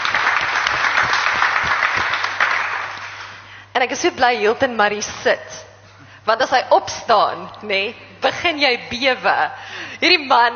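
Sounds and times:
audience applause: 0.0s - 3.3s
speech: 3.8s - 5.7s, 6.3s - 10.5s.

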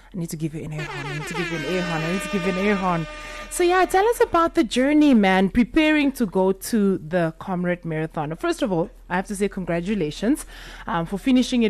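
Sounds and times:
speech: 0.1s - 11.6s
loud air horn blast with brassy buzzing tone: 0.6s - 4.2s.

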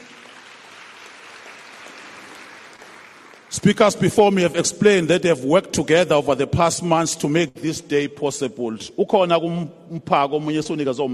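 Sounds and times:
large crowd applause: 0.0s - 4.0s
speech: 3.5s - 11.1s.

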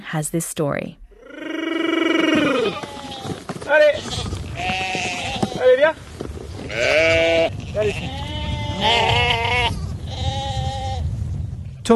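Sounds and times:
speech: 0.1s - 1.0s, 5.8s - 6.1s, 6.7s - 9.6s
sheep farmer calling out to his herd on a family farm: 1.2s - 2.8s
flock of sheep bleating on a family farm near Dreux in France: 1.2s - 6.0s, 6.6s - 11.1s.

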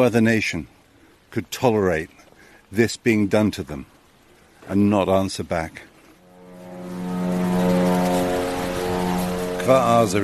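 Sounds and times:
speech: 0.0s - 4.0s, 4.7s - 5.9s, 9.6s - 10.2s
military propeller drone humming overhead: 6.0s - 10.2s.

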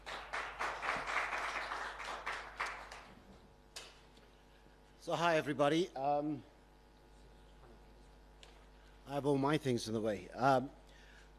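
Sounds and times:
audience at a presentation applauding to welcome a speaker: 0.0s - 3.2s
speech: 5.0s - 6.5s, 9.1s - 10.8s.

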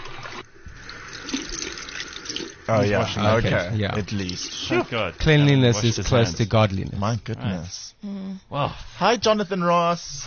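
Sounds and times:
running tap water at a bathroom sink as someone washes hands: 0.0s - 7.1s
speech: 2.7s - 10.2s.

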